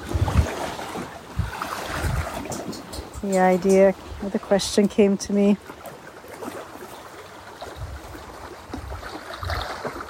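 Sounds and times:
steady wind noise: 0.0 - 4.7, 7.6 - 10.0
soft low waves lapping on a lake: 0.0 - 10.0
speech: 3.2 - 5.8.

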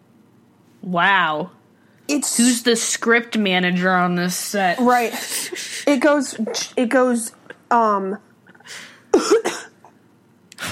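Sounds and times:
speech: 0.8 - 8.9
cough: 9.1 - 9.9.

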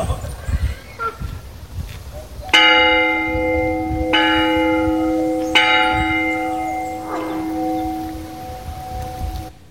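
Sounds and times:
large church bell tolling in bell tower: 2.5 - 9.5.

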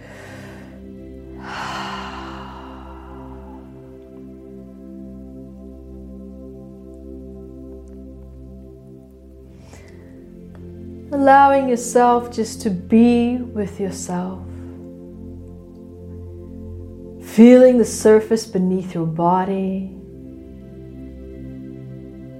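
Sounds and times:
deep inhale during a guided relaxation: 0.0 - 4.5, 9.5 - 10.4
speech: 11.1 - 14.5, 17.4 - 20.0.

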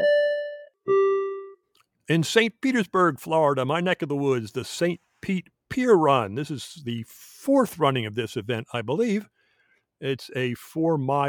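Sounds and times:
two-note bell chime celebrating a runner's course personal record at a 5K race: 0.0 - 1.6
speech: 2.1 - 9.4, 10.0 - 11.2.

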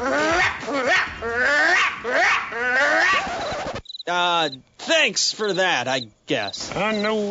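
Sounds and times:
dog barking aggressively with drawn-out wavering yowls: 0.3 - 3.4
speech: 4.1 - 7.3.

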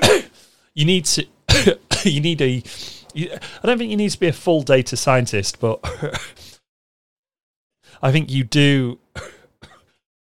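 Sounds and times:
person coughing: 0.0 - 0.4, 1.5 - 2.2, 5.8 - 6.6, 9.2 - 10.0
speech: 0.8 - 6.5, 7.9 - 9.4.

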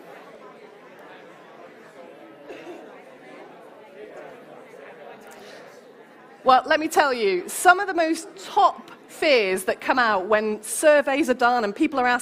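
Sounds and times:
audience of people talking among themselves: 0.0 - 12.2
speech: 6.4 - 12.2.

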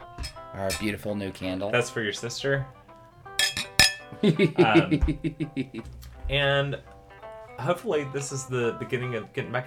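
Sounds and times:
glasses clinking in a toast: 0.1 - 0.9, 3.4 - 4.1
speech: 0.6 - 2.8, 4.2 - 6.9, 7.6 - 9.6
laughter: 4.2 - 5.9.

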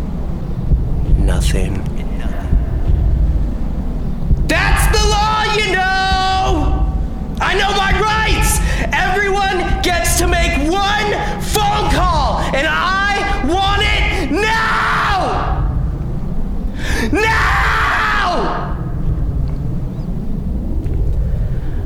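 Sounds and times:
low rumble: 0.0 - 21.8
speech: 1.4 - 2.0
man screaming at top of lungs: 4.5 - 15.7, 16.9 - 18.8.

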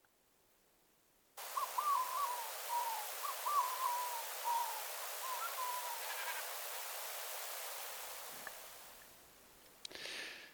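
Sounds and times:
steady hiss: 0.0 - 10.5
distant Manx Shearwater calls: 1.4 - 7.3.

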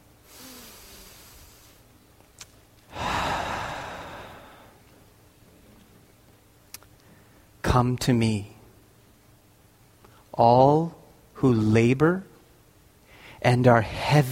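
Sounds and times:
person taking a deep breath: 0.3 - 1.8, 2.9 - 4.8, 13.0 - 13.4
speech: 7.8 - 8.5, 10.4 - 12.3, 13.4 - 14.3.

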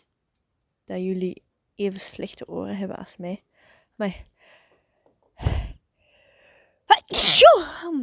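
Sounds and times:
speech: 0.9 - 4.3, 7.1 - 8.0
brief inhale before sneeze: 5.4 - 6.8
loud sneeze: 7.1 - 7.8.

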